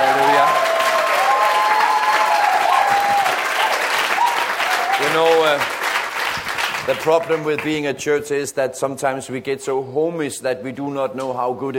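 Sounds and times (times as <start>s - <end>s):
church congregation applause: 0.0s - 7.7s
speech: 6.9s - 11.7s.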